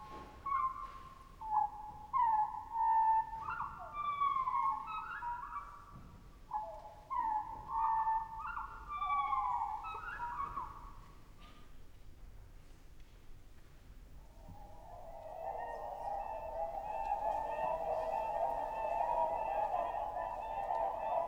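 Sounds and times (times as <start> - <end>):
faint hiss: 0.0 - 21.2
Arctic birds calling at the Arctic Circle: 0.4 - 5.8, 6.5 - 11.0, 14.2 - 21.2.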